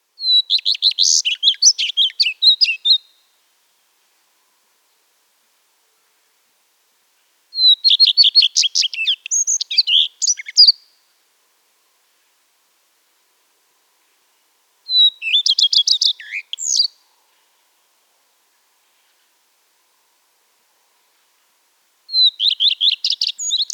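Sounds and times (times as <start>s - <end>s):
common redstart Phoenicurus phoenicurus singing: 0.2s - 3.3s, 7.6s - 11.0s, 14.9s - 17.0s, 22.1s - 23.7s.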